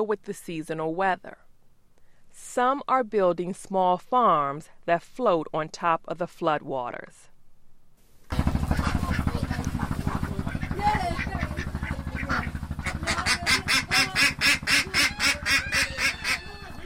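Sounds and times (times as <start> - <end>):
speech: 0.0 - 1.5, 2.4 - 7.3
constant low rumbling hum: 7.3 - 16.8
flock of ducks quacking in a coop on a floating bamboo farm: 8.3 - 16.8.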